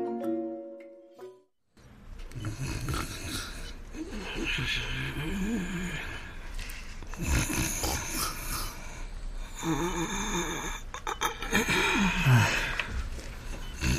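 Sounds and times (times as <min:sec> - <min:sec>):
person snoring while sleeping: 0:02.4 - 0:06.4, 0:07.1 - 0:12.9, 0:13.7 - 0:13.9.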